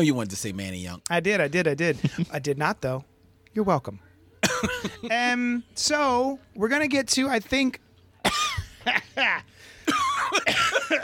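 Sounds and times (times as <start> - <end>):
speech: 0.0 - 11.0
person coughing with strained raspy coughs: 4.4 - 5.1, 8.2 - 9.1, 9.8 - 11.0.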